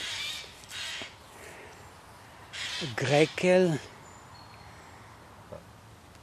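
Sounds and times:
crow cawing: 0.0 - 1.6, 2.5 - 3.0
faint outdoor background: 0.0 - 6.2
speech: 2.8 - 4.0.

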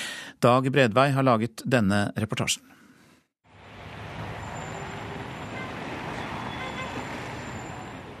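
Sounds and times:
speech: 0.4 - 2.8
cars and scooters passing in busy city street traffic: 3.5 - 8.1.

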